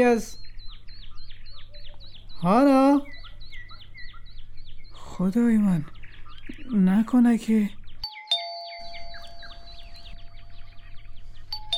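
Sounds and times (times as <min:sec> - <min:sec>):
speech: 0:00.0 - 0:00.4, 0:02.4 - 0:03.1, 0:05.2 - 0:07.8
electronic doorbell ringing with bird-like notes: 0:08.0 - 0:10.6, 0:11.6 - 0:11.7.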